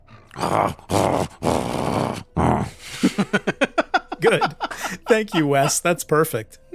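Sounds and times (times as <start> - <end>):
dog grunting and growling: 0.0 - 2.8
speech: 0.4 - 1.4, 5.2 - 6.6
laughter: 2.8 - 6.0.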